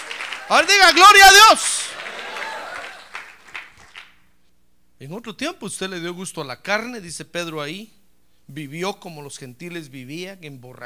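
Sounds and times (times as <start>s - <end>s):
audience applauding: 0.0s - 4.2s
speech: 0.5s - 1.9s, 5.0s - 10.8s.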